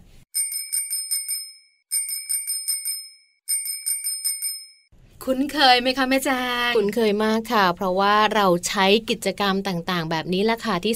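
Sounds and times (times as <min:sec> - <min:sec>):
bicycle bell ringing in a public park in Thailand: 0:00.4 - 0:04.9
speech: 0:05.2 - 0:10.9.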